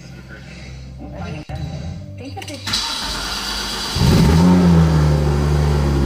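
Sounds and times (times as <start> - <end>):
speech: 1.0 - 3.4
Porsche GT3 RS sports car engine starting, revving and idling: 2.9 - 6.0.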